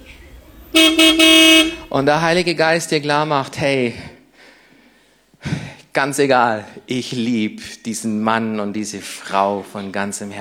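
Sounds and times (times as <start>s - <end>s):
car horn honking loudly: 0.7s - 2.1s
speech: 0.8s - 4.1s, 6.0s - 10.3s.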